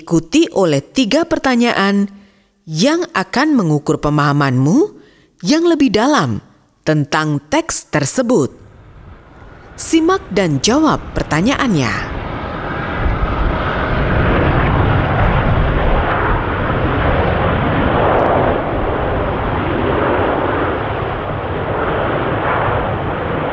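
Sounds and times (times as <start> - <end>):
speech: 0.0 - 8.6, 9.8 - 12.2
loud steady airplane engine roar: 8.6 - 23.5.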